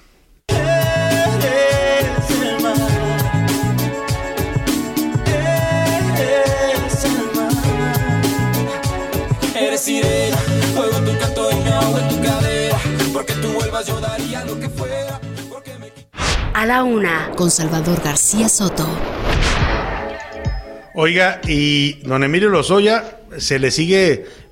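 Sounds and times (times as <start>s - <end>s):
polished pop ballad by a vocal duo with full band: 0.5s - 16.0s
speech: 13.4s - 15.2s, 16.6s - 19.6s, 21.0s - 24.4s.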